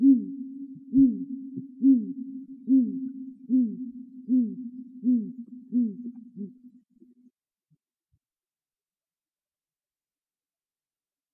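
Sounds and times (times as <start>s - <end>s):
great grey owl deep hoots at Myrskylä, Finland: 0.0s - 7.2s.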